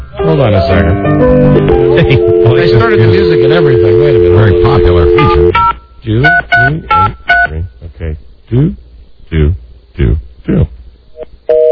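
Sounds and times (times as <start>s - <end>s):
speech: 0.2s - 10.8s
telephone busy signal tone: 1.1s - 5.7s
short grunting vocal bursts: 7.5s - 10.8s.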